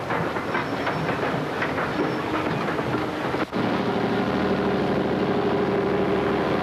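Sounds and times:
train wheels clattering over track joints: 0.0s - 3.6s
heaviest Deutsche Reichsbahn 6000 horsepower electric locomotive hauling measuring cars: 0.0s - 6.6s
steady low mechanical drone and rolling noise: 2.6s - 6.6s.

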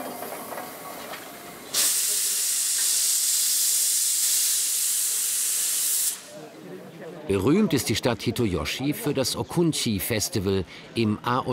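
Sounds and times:
steam locomotive releasing a hiss of steam: 0.0s - 6.4s
speech: 7.1s - 11.5s.

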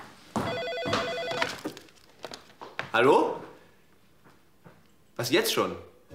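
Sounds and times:
telephone ringing with a warbling electronic tone: 0.4s - 1.8s
speech: 2.9s - 3.5s, 5.2s - 5.9s.

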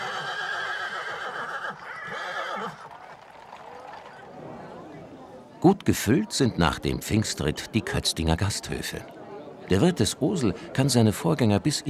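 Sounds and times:
horses neighing after a Whitsun horseback procession: 0.0s - 4.0s
noise: 0.0s - 11.8s
speech: 5.6s - 11.8s.

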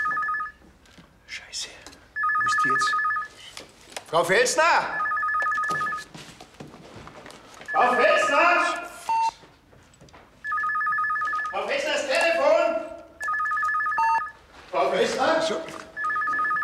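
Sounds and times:
telephone ringing with electronic trill: 0.0s - 0.6s, 2.2s - 3.4s, 4.8s - 6.1s, 7.6s - 9.4s, 10.4s - 12.6s, 13.2s - 14.4s, 15.2s - 16.6s
speech: 4.1s - 5.1s, 7.8s - 8.8s.

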